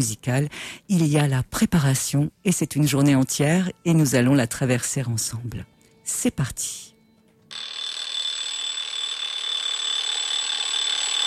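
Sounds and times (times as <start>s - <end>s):
speech: 0.0s - 6.9s
alarm clock ringing with metallic clatter: 7.5s - 11.2s.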